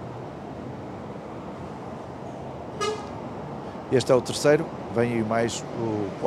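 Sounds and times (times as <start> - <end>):
steady rumbling road noise: 0.0 - 6.2
horn honk from a passing bus: 2.8 - 3.2
speech: 3.9 - 6.2.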